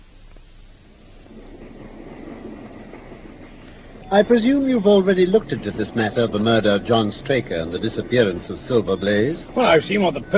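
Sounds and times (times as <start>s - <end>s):
train running on rails: 0.0s - 10.3s
speech: 4.1s - 10.3s.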